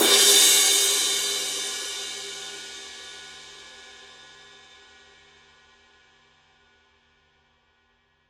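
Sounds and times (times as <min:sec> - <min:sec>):
20-inch crash cymbal hit on edge: 0:00.0 - 0:03.4.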